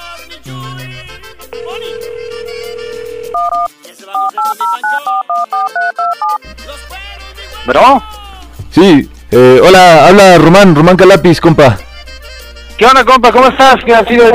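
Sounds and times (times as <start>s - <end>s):
steady held telephone tone: 1.5s - 6.4s
speech: 7.6s - 8.1s, 8.8s - 11.9s, 12.8s - 14.3s.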